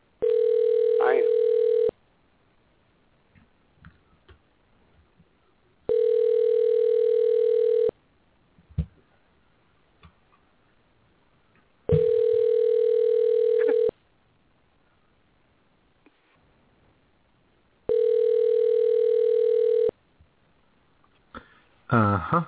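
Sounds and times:
faint small noises: 0.0s - 22.4s
redialled telephone call ringback tones: 0.2s - 1.9s, 5.9s - 7.9s, 11.9s - 13.9s, 17.9s - 19.9s.

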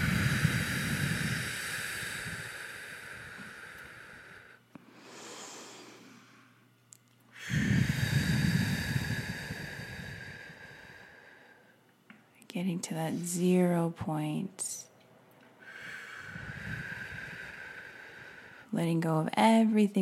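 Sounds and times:
deep breathing during a guided group meditation: 0.0s - 6.7s, 7.3s - 11.8s, 15.5s - 18.8s
speech: 12.6s - 14.9s, 18.8s - 20.0s.

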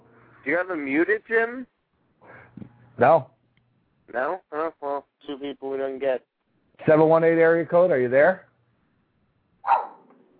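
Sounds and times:
speech: 0.4s - 1.7s, 3.0s - 3.3s, 4.1s - 8.5s
caller's dog barking over a phone line during a radio call-in: 9.6s - 10.1s.

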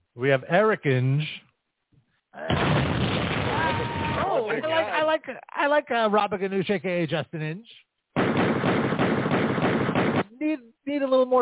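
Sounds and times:
speech: 0.2s - 1.4s, 4.6s - 8.8s, 10.4s - 11.3s
gunshot sound effect: 2.5s - 4.2s, 8.2s - 10.3s.

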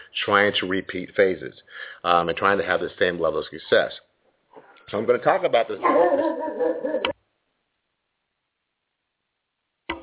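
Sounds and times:
speech: 0.2s - 4.0s, 4.9s - 7.2s
dog whimpering and yipping: 5.8s - 7.1s.

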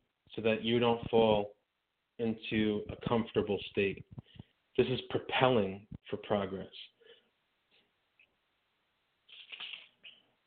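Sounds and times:
speech: 0.4s - 1.6s, 2.2s - 6.9s
paper page turning: 9.3s - 10.2s.

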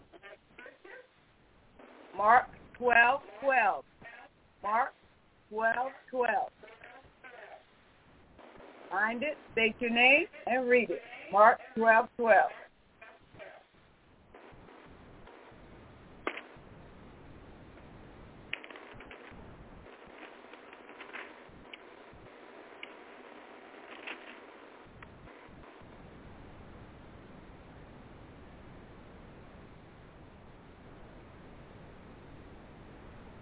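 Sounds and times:
speech: 2.2s - 3.9s, 4.6s - 6.6s, 8.9s - 12.6s
Bible paper pages being flipped through: 20.2s - 21.3s, 23.9s - 24.4s.

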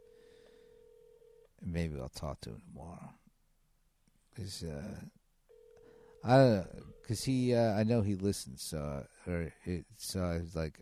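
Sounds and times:
phone line ringing tone electronic buzz: 0.0s - 1.5s, 5.5s - 7.2s
speech: 1.6s - 3.2s, 4.4s - 5.2s, 6.2s - 10.8s.

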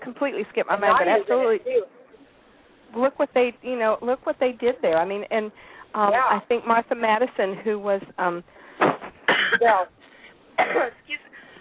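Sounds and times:
speech: 0.0s - 2.0s, 2.9s - 8.6s, 9.6s - 10.0s, 10.6s - 11.2s
adult coughing: 8.8s - 9.8s, 10.6s - 11.0s.

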